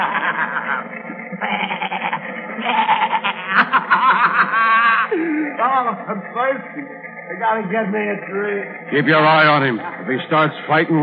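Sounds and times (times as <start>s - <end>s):
billy goats bleating: 0.0s - 5.2s
laughter: 0.0s - 7.0s
speech: 5.7s - 11.0s.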